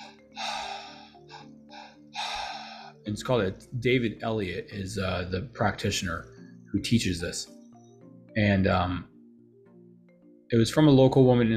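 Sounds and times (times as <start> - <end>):
two-part breathwork breath in and out through the mouth: 0.0 - 3.0
speech: 3.1 - 7.6, 8.4 - 9.1, 10.5 - 11.5.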